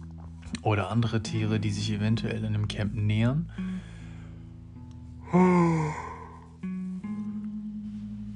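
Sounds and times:
speech: 0:00.6 - 0:04.0, 0:05.3 - 0:06.1
person yawning with voiced wavering groan: 0:05.2 - 0:06.5.

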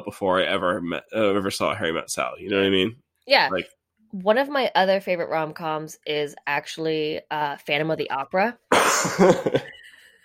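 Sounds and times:
speech: 0:00.0 - 0:09.9
person coughing with a laughing quality: 0:08.7 - 0:09.7
laughter: 0:08.8 - 0:10.0.

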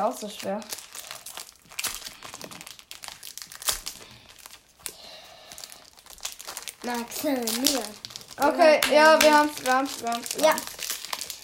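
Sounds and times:
speech: 0:00.0 - 0:00.8, 0:06.8 - 0:10.8
foil Pokémon card booster pack crinkling and being torn open: 0:00.0 - 0:11.4.

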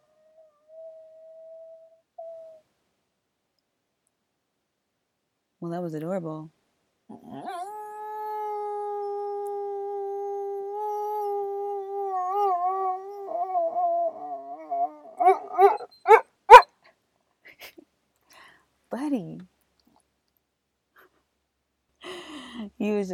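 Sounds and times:
dog howling softly in its sleep: 0:00.0 - 0:02.6, 0:07.2 - 0:16.6
speech: 0:05.6 - 0:07.6
dog yipping in its sleep: 0:12.4 - 0:16.7.

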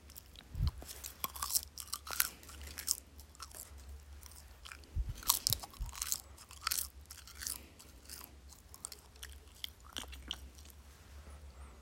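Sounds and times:
chewing dried coca leaves: 0:00.0 - 0:10.8.

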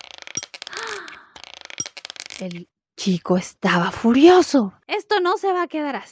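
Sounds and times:
gold coins from a sack clinking as payment: 0:00.0 - 0:02.6
speech: 0:02.4 - 0:06.1.

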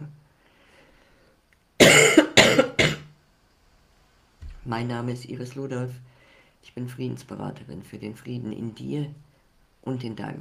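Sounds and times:
person coughing: 0:01.8 - 0:03.1
speech: 0:04.7 - 0:09.2, 0:09.8 - 0:10.3.

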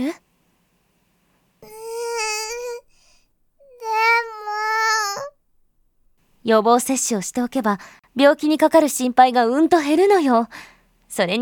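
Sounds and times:
speech: 0:00.0 - 0:00.2, 0:06.5 - 0:11.4
young girl crying: 0:01.6 - 0:03.0, 0:03.7 - 0:05.4.

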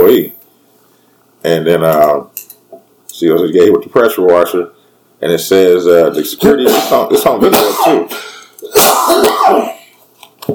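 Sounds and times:
speech: 0:00.1 - 0:00.4, 0:01.4 - 0:02.4, 0:03.2 - 0:09.8
person sneezing: 0:06.6 - 0:09.9.

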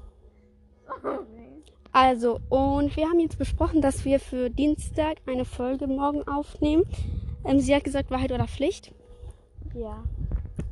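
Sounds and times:
dog barking on an evening walk: 0:00.9 - 0:01.3
speech: 0:02.0 - 0:09.0, 0:09.8 - 0:10.2.

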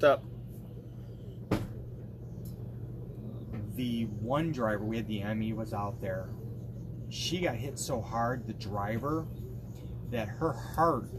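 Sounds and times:
speech: 0:00.0 - 0:00.3, 0:03.8 - 0:06.4, 0:07.1 - 0:09.4, 0:10.1 - 0:11.1
low steady hum: 0:00.0 - 0:11.1
door shutting with a thud: 0:01.5 - 0:01.8.

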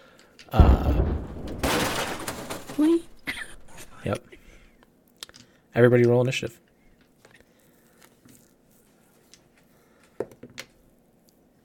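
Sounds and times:
speech: 0:00.5 - 0:00.8, 0:04.0 - 0:04.4, 0:05.8 - 0:06.6
crackling, rumbling debris: 0:00.5 - 0:04.2
booming explosion blast with heavy low-end thud: 0:00.6 - 0:03.8.

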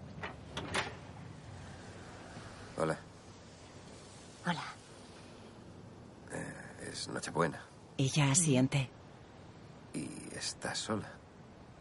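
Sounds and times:
door with an opaque panel being opened: 0:00.2 - 0:01.1
speech: 0:02.8 - 0:03.0, 0:04.5 - 0:04.8, 0:07.0 - 0:09.0, 0:10.4 - 0:11.2.

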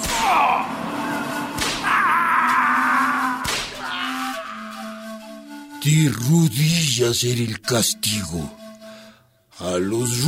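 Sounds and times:
whip lashes cracking: 0:00.0 - 0:00.4, 0:01.6 - 0:01.9, 0:03.4 - 0:03.9
steady droning background with low moaning tones: 0:00.0 - 0:05.6
speech: 0:05.8 - 0:08.6, 0:09.8 - 0:10.2.

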